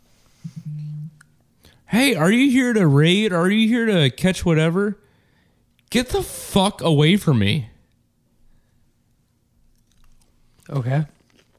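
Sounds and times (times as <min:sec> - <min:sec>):
speech: 0:01.9 - 0:05.0, 0:05.9 - 0:07.7, 0:10.7 - 0:11.2
crunchy chewing of Cheetos into a microphone: 0:09.7 - 0:11.5.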